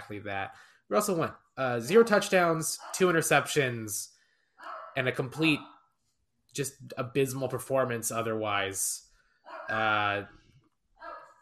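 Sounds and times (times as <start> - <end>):
speech: 0.1 - 5.8, 6.6 - 10.4
dogs barking: 2.6 - 3.5, 4.6 - 5.9, 9.5 - 10.0, 11.0 - 11.3.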